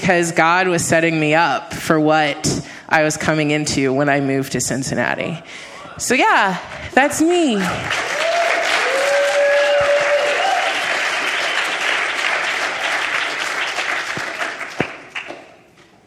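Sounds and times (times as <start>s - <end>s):
speech: 0.1s - 8.2s
crowd applauding: 7.6s - 15.6s
people whooping: 7.9s - 12.0s.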